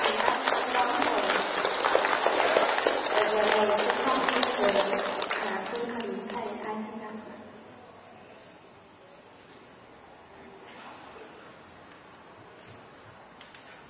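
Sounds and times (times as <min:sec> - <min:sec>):
audience applause at a Buddhist dharma gathering: 0:00.0 - 0:06.1
voices: 0:00.0 - 0:12.0.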